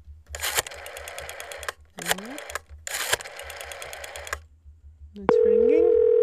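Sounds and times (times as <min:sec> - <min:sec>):
telephone ringing tone: 0:05.3 - 0:06.2.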